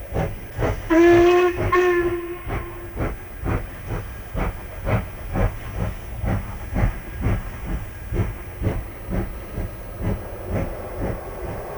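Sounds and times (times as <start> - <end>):
rhythmic chuffing and hissing of a train: 0.0 - 11.7
shrill train whistle at night: 0.6 - 3.4.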